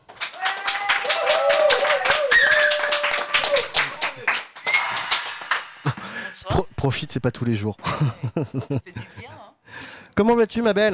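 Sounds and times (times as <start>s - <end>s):
TV studio audience applause: 0.0s - 6.1s
audience whoops and cheering voices: 0.3s - 5.4s
speech: 6.8s - 9.4s, 10.2s - 10.9s
laughter: 7.8s - 9.4s.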